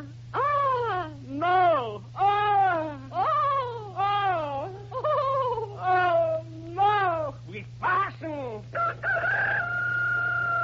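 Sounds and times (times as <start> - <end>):
steady low hum: 0.0 - 10.6
rooster crowing: 8.7 - 10.6.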